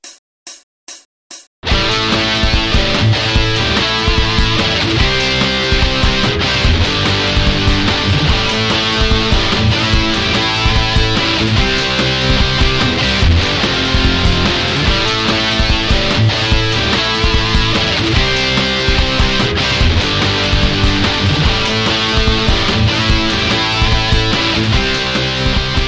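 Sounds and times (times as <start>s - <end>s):
tap jam track music: 1.6s - 25.8s.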